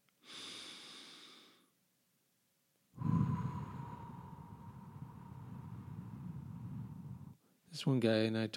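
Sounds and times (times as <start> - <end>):
loud slow raspy breathing as a focusing exercise: 0.2 - 1.7, 3.0 - 7.4
speech: 7.8 - 8.5.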